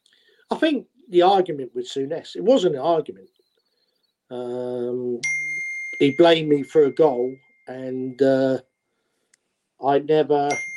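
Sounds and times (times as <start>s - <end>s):
speech: 0.5s - 3.4s, 4.3s - 5.4s, 6.0s - 8.7s, 9.8s - 10.7s
phone electronic ringtone: 5.2s - 7.9s, 10.5s - 10.7s.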